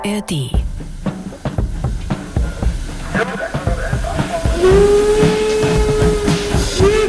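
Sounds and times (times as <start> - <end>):
speech: 0.1 - 0.6
steam locomotive chuffing: 0.7 - 7.0
steam locomotive whistle: 2.3 - 7.0.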